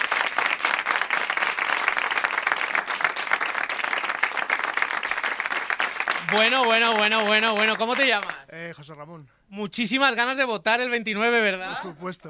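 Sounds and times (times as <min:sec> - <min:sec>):
studio audience applause: 0:00.0 - 0:08.5
speech: 0:06.3 - 0:12.2.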